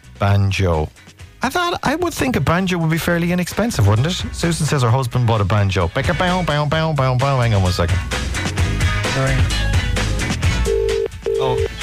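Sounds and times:
speech: 0.2s - 8.5s, 9.2s - 9.8s
ringback tone of an outgoing telephone call: 10.6s - 11.8s.

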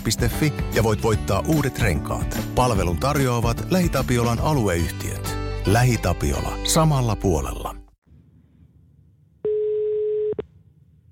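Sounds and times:
speech: 0.0s - 7.8s
telephone ringback tone of outgoing call from the earpiece: 9.5s - 10.4s.

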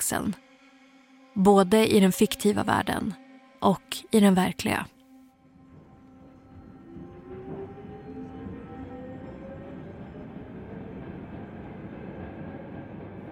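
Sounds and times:
speech: 0.1s - 0.5s, 1.4s - 4.9s
subway train starting to roll with heavy low rumble: 5.4s - 13.3s
subway train motors whining: 5.5s - 12.2s
subway train wheels squealing against the rails: 5.6s - 13.3s.

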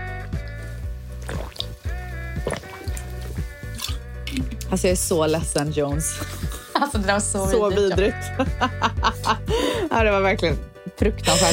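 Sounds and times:
person drinking water with wet swallowing, gulping and liquid slurps: 1.2s - 1.8s, 2.4s - 4.7s
speech: 4.4s - 11.5s
laughter: 6.5s - 9.9s.

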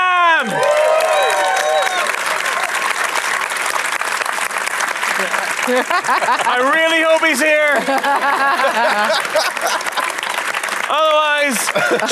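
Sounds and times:
scattered cheers and whoops: 0.0s - 3.2s
crowd applauding: 0.0s - 12.1s
laughter: 5.0s - 12.1s
speech: 5.7s - 9.9s, 10.9s - 12.1s
man speaking into a microphone: 6.4s - 7.9s, 10.9s - 12.1s.

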